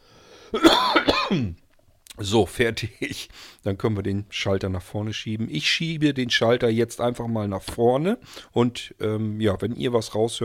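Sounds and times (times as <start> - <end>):
single loud throaty rasping cough: 0.5 - 1.6
speech: 2.2 - 10.4.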